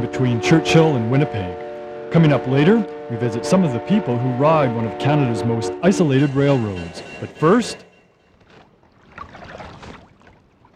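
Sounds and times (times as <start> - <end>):
speech: 0.0 - 7.9
canoe paddle strokes splashing through the Miramichi River water in New Brunswick: 8.3 - 10.7.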